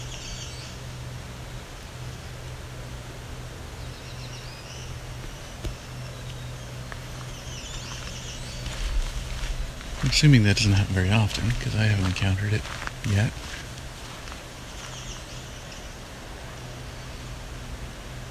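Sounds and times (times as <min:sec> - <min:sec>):
black-throated green warbler singing an odd song variant: 0:00.0 - 0:18.3
low hum: 0:00.0 - 0:18.3
steady hiss: 0:00.0 - 0:18.3
speech: 0:10.0 - 0:13.6.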